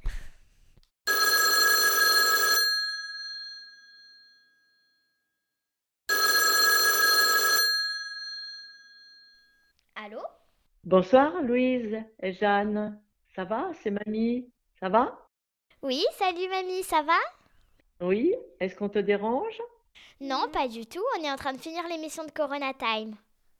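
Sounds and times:
old-style telephone bell ringing: 1.1 - 5.1, 6.1 - 9.7
speech: 10.8 - 15.2, 15.8 - 17.4, 18.0 - 23.2.

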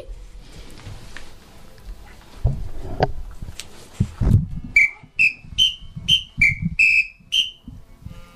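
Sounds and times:
small two-tone whistle blown in short shrill toots: 4.8 - 7.7.

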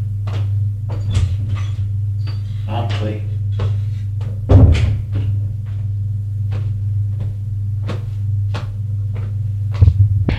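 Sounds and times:
steady low hum: 0.0 - 10.3
door opening with scraping and rattling: 0.9 - 3.7.

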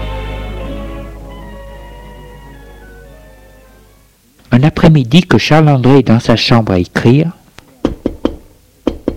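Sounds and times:
speech: 4.7 - 7.4
maid knocking on a bedroom door: 7.8 - 9.1.

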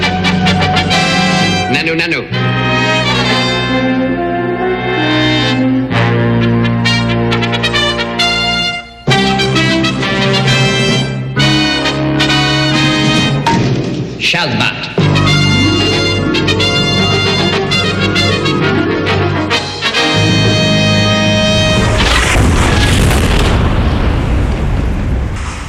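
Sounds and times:
loud sustained tonal music: 0.0 - 23.5
speech: 1.9 - 2.6
powerful bomb explosion: 21.1 - 25.6
roaring rumbling wash of noise: 21.2 - 25.6.

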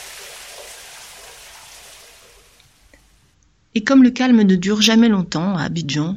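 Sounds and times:
heavy rain pouring in Abidjan: 0.0 - 3.1
speech: 3.8 - 6.1.

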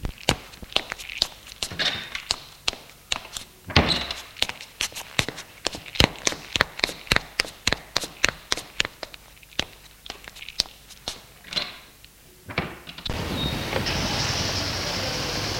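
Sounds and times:
footsteps walking at a brisk pace: 0.0 - 11.5
car engine starting as the car pulls away: 13.1 - 15.5.

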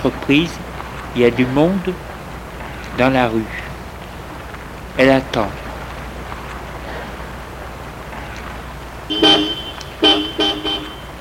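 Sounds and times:
speech: 0.0 - 0.6, 1.2 - 2.1, 3.0 - 3.6, 5.0 - 5.6
low steady hum of street traffic: 0.0 - 11.1
car horn honking in short loud blasts: 9.0 - 11.1.

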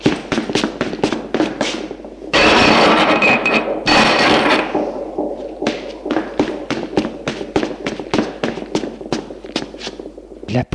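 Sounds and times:
quick hard running footsteps: 0.0 - 10.5
iron bar rattling and scraping as it is unhooked: 1.8 - 10.2.

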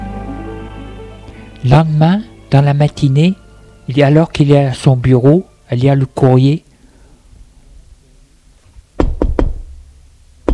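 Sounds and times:
speech: 1.6 - 6.7
knocking on a door: 9.0 - 9.8.

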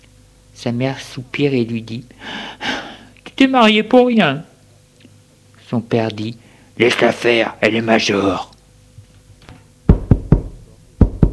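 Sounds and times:
speech: 0.6 - 2.2, 3.4 - 4.5, 5.7 - 8.5
knocking on a door: 9.9 - 11.3.

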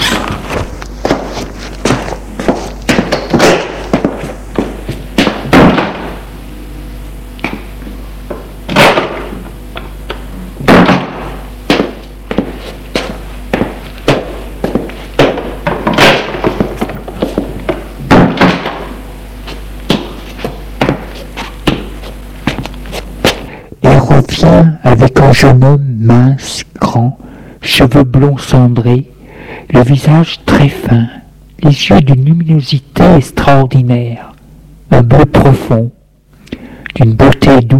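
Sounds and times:
footsteps: 0.0 - 6.2, 9.8 - 23.6
steady low hum: 0.0 - 27.6
speech: 24.4 - 26.6, 27.9 - 29.1, 29.7 - 34.3, 34.9 - 36.0, 37.0 - 37.7.

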